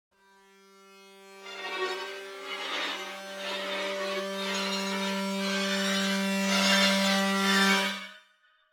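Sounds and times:
suspenseful eerie dark tense horror violin strings: 0.6s - 8.1s.

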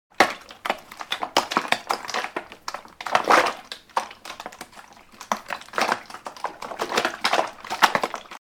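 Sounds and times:
metal stick mixing paint in a small can: 0.2s - 8.4s.

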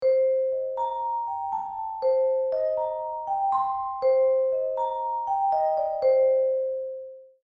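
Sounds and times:
mysterious vibraphone melody: 0.0s - 7.4s.

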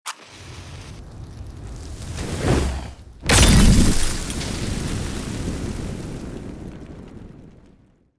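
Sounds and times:
fire from Molotov cocktail in war: 0.2s - 8.1s
Molotov cocktail thrown in war: 3.3s - 4.4s
Molotov cocktail glass breaking: 3.3s - 4.9s.

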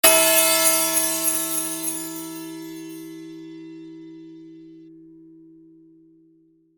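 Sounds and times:
Christmas sleigh bells ringing: 0.0s - 3.8s.

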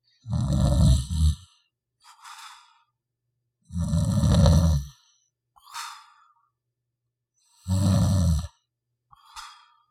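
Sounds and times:
man snoring with snorts and breaths: 0.3s - 1.4s, 3.7s - 4.9s, 7.6s - 8.5s.

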